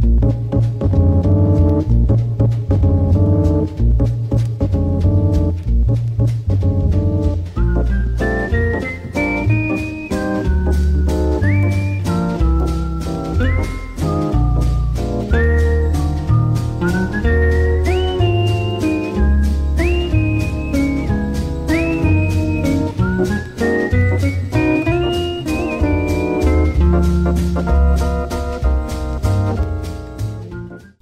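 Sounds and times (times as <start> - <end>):
full band accompaniment: 0.0 - 31.0
harmonica player whistling a lilting jazz waltz melody: 0.2 - 31.0.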